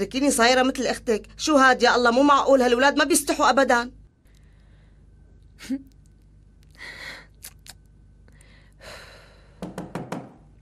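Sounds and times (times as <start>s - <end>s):
speech: 0.0s - 4.0s, 5.6s - 5.9s
knocking on the door of a home: 9.6s - 10.4s.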